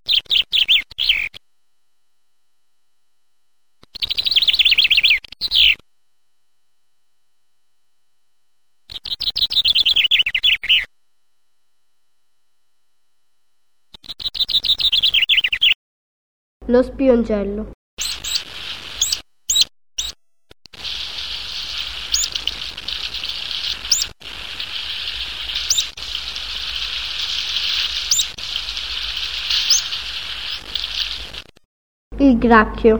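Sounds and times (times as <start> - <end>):
chaffinch singing: 0.0 - 1.4, 4.0 - 5.8, 8.9 - 10.9, 14.0 - 15.8, 18.0 - 20.2, 20.8 - 31.4
speech: 16.7 - 17.8, 32.4 - 32.9.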